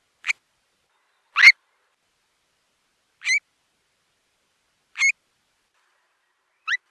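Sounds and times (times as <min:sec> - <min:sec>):
Stone curlew Burhinus oedicnemus calling: 0:01.0 - 0:01.6, 0:03.2 - 0:03.4, 0:05.0 - 0:05.2, 0:06.6 - 0:06.9.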